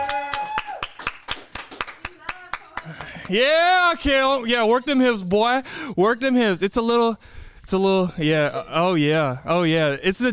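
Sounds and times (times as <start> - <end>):
steady rhythmic clapping for a co-host at a subscriber celebration: 0.0 - 4.2
speech: 3.3 - 10.3.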